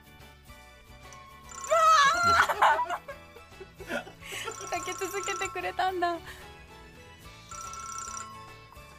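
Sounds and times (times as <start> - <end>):
telephone ringing: 1.2 - 2.8, 4.4 - 6.1, 7.4 - 8.9
laughter: 2.0 - 4.8
speech: 5.0 - 6.4.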